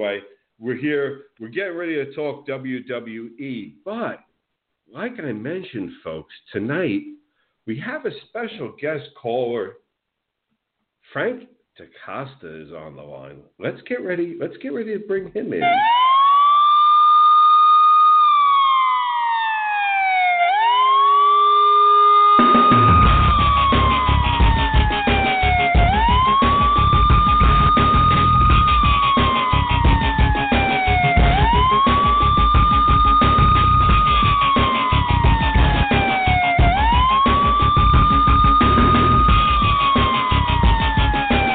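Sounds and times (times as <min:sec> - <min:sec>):
speech: 0:00.0 - 0:04.3, 0:04.9 - 0:09.8, 0:11.1 - 0:16.0
emergency vehicle siren wailing: 0:15.6 - 0:41.5.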